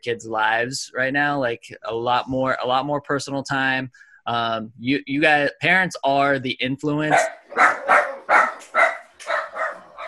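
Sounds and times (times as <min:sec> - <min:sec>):
speech: 0:00.0 - 0:08.1
dog barking: 0:07.1 - 0:10.0.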